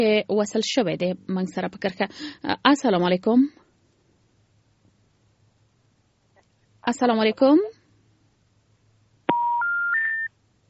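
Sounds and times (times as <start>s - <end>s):
speech: 0.0s - 3.6s, 6.8s - 7.8s
telephone disconnect tone after a call is cut off: 9.3s - 10.3s.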